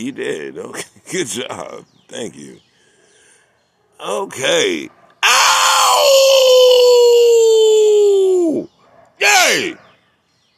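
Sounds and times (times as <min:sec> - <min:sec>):
speech: 0:00.0 - 0:02.7, 0:04.0 - 0:05.0, 0:08.5 - 0:09.8
person howling imitating a dog: 0:05.2 - 0:08.6.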